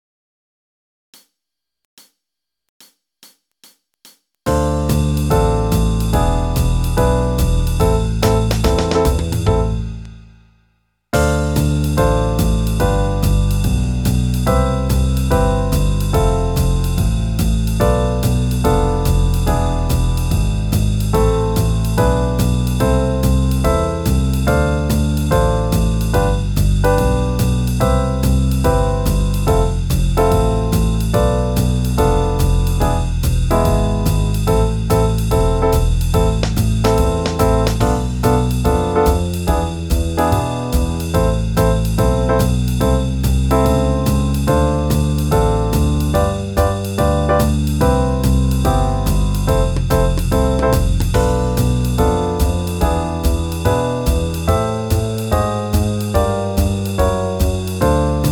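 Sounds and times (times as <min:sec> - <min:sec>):
backing track in C major at 144 bpm: 0:04.5 - 0:10.0, 0:11.2 - 0:58.3.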